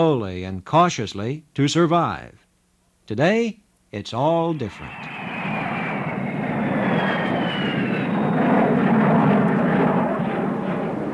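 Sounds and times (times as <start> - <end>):
speech: 0.0 - 2.4, 3.1 - 5.2
faint descending jet engine whine: 4.4 - 11.1
jet airliner engines roaring: 4.4 - 11.1.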